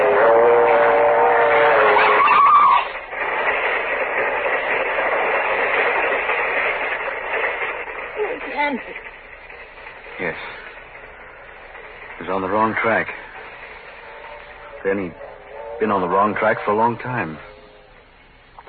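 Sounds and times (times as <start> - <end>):
train horn-like tone: 0.0 - 3.0, 14.0 - 18.0
train rumbling on the tracks: 0.0 - 18.6
voices: 0.0 - 18.6
speech: 12.8 - 13.2, 14.9 - 15.2, 15.8 - 17.5.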